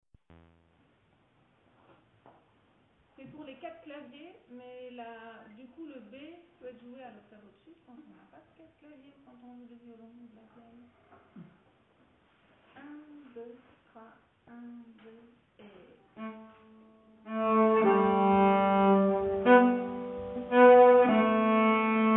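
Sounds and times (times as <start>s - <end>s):
nyckelharpa playing mazurka bass part: 16.2s - 22.1s.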